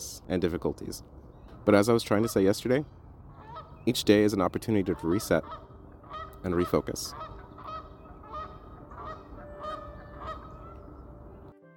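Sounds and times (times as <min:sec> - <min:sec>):
steady outdoor rumble: 0:00.0 - 0:11.5
speech: 0:00.3 - 0:03.0, 0:03.8 - 0:05.7, 0:06.4 - 0:07.3
ducks calling at a lake: 0:02.0 - 0:02.7, 0:03.3 - 0:11.2.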